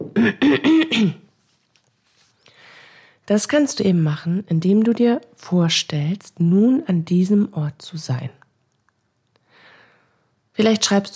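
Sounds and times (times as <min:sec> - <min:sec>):
person clearing throat: 0:00.0 - 0:01.3
speech: 0:00.2 - 0:01.2, 0:03.3 - 0:08.4, 0:10.6 - 0:11.1.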